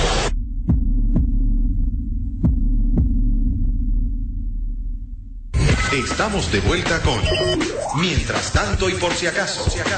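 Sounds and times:
heartbeat sound effect in a lub-dub rhythm: 0.3s - 5.5s
speech: 5.9s - 9.9s.

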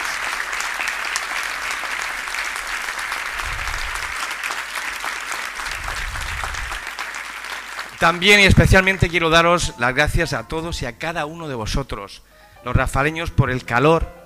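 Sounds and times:
audience applause at a benefit concert: 0.0s - 9.3s
speech: 8.0s - 14.2s.

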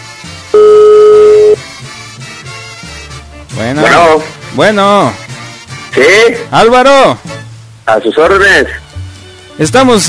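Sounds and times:
telephone tone beep while a call is being placed: 0.6s - 1.6s
speech: 3.6s - 5.2s, 6.0s - 7.3s, 7.9s - 8.8s, 9.6s - 10.0s.

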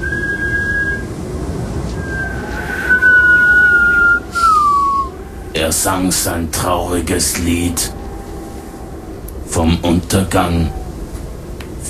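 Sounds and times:
constant low rushing rumble: 0.0s - 11.8s
wind whistling over the rocks of an island: 0.0s - 11.8s
speech: 5.7s - 8.0s, 9.5s - 10.8s.

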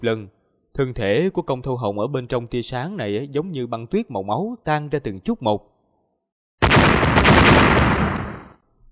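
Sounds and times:
speech: 0.0s - 5.7s
loud explosion sound effect: 6.6s - 8.6s.

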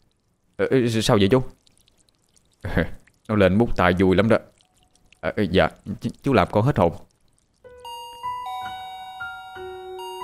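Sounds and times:
speech: 0.6s - 1.6s, 2.7s - 4.5s, 5.2s - 7.1s
gate bell electronic chime: 7.8s - 10.2s.

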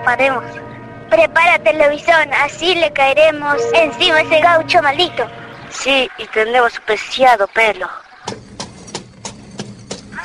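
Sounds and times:
speech: 0.1s - 8.4s
horse hooves trotting as a gaucho rides in: 8.3s - 10.2s.

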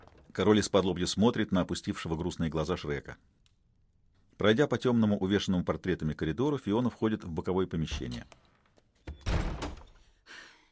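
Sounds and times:
speech: 0.4s - 3.4s, 4.4s - 8.5s
door slamming shut hard: 9.1s - 10.0s.

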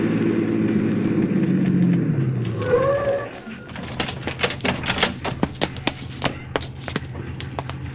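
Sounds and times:
police squad car engine rumbling as it pulls up: 0.0s - 7.9s
brief squeal of police squad car stopping: 2.5s - 3.7s.

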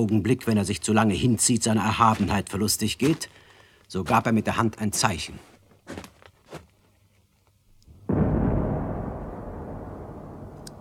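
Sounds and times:
speech: 0.0s - 6.1s
single signal cannon shot boom: 8.0s - 10.7s
long rumble: 8.1s - 10.7s
faint clicks: 10.6s - 10.7s.

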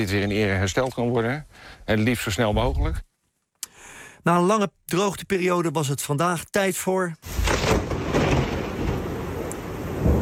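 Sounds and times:
speech: 0.0s - 3.1s, 4.2s - 7.9s
hail and rain falling during a cloudburst in Zeeland, Netherlands: 7.3s - 10.2s
low thunder rumbling: 7.3s - 10.2s.

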